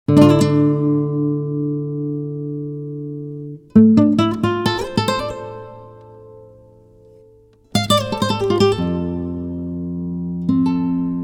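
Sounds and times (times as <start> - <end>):
guitar: 0.1 - 11.2.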